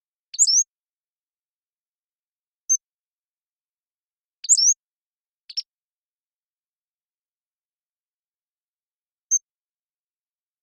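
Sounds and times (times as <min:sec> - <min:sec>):
Pacific-slope flycatcher Empidonax difficilis singing: 0:00.3 - 0:00.7, 0:04.4 - 0:04.8, 0:05.5 - 0:05.7.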